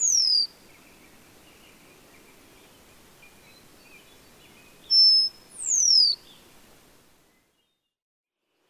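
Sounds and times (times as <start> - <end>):
brown-headed cowbird whistled sweeps: 0.0 - 6.9.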